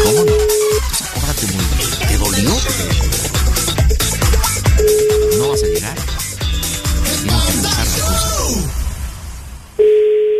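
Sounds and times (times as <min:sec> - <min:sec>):
low-pitched phone line beep after a call is hung up: 0:00.0 - 0:00.8, 0:04.7 - 0:05.8, 0:09.8 - 0:10.3
loud strained vocal sounds: 0:00.0 - 0:04.8, 0:05.4 - 0:08.8.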